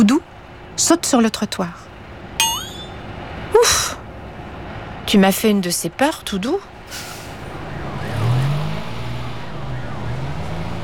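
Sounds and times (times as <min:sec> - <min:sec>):
busy city traffic rumbling: 0:00.0 - 0:10.8
speech: 0:00.1 - 0:01.8, 0:05.1 - 0:07.1
vehicle engines revving as vehicles pull away: 0:07.5 - 0:10.8.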